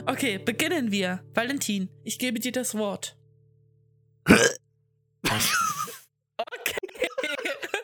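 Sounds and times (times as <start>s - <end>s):
speech: 0.1s - 3.2s
throat clearing: 4.3s - 4.6s, 5.2s - 6.0s
laughter: 6.4s - 7.8s.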